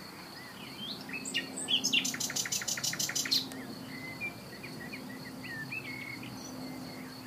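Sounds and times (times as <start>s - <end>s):
Common nightingale Luscinia megarhynchos singing: 0.0s - 7.2s.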